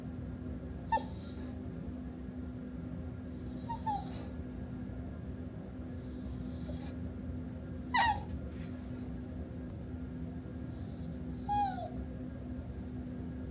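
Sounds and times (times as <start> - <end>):
steady low hum: 0.0 - 13.4
untrained female dog whining at a workplace: 0.8 - 1.6, 3.4 - 4.4, 6.1 - 7.0, 7.9 - 8.4, 10.8 - 12.0.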